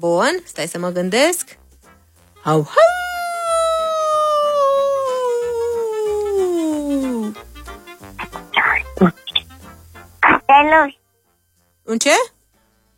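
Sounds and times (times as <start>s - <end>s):
speech: 0.0s - 1.6s, 2.4s - 3.0s, 10.7s - 11.0s, 11.9s - 12.3s
person imitating a wolf howling in an animal-guessing game: 2.6s - 7.4s
short bursts of voice: 8.2s - 9.4s, 10.2s - 11.0s.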